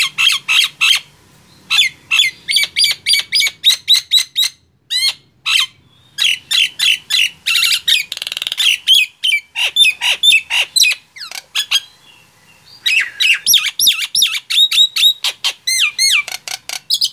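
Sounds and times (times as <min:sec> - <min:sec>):
Nias hill myna squawking and whistling: 0:01.7 - 0:12.0, 0:12.7 - 0:17.1.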